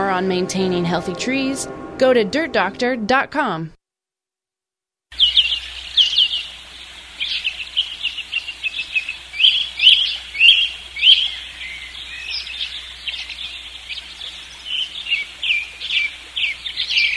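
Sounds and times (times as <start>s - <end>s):
speech: 0.2s - 3.8s
birds chirping and singing: 5.2s - 17.1s.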